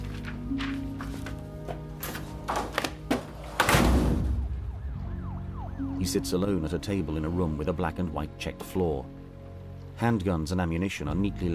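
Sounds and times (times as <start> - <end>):
paper and file clicks and knocks: 0.0 - 3.8
metal filing cabinet drawer rolling on runners and thudding shut: 2.0 - 4.4
steady droning siren-like tonal background: 4.3 - 6.9
speech: 6.0 - 9.2, 10.0 - 11.5.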